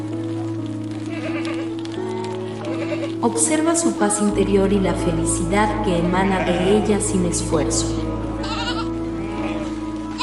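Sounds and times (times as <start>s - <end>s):
soft patter like light rain: 0.0s - 10.2s
flock of sheep bleating: 1.0s - 1.9s, 2.5s - 3.2s, 5.9s - 10.2s
speech: 3.2s - 8.0s.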